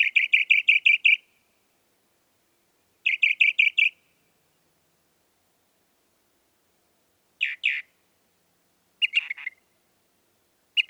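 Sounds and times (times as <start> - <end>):
Northern mockingbird clear chirps: 0.0 - 1.3, 3.0 - 4.0, 7.4 - 7.9, 9.0 - 9.6.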